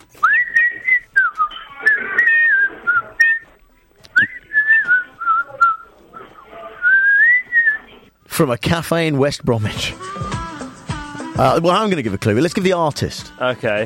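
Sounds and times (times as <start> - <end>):
person whistling a melodic tune: 0.2 - 3.5, 4.2 - 5.8, 6.8 - 7.8
speech: 8.4 - 10.3, 11.4 - 13.8.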